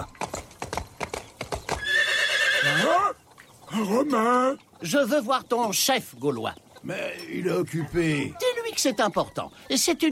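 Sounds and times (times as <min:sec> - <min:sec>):
horse hooves clip-clopping: 0:00.0 - 0:03.5
horse whinnying: 0:01.8 - 0:03.2
speech: 0:02.7 - 0:10.1.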